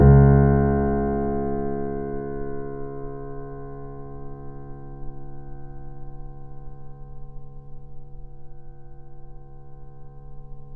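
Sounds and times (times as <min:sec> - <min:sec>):
pianissimo C#1 grand piano note recorded off mic: 0:00.0 - 0:04.6.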